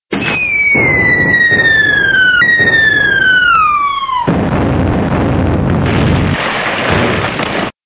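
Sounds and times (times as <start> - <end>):
ship crash: 0.1 - 7.8.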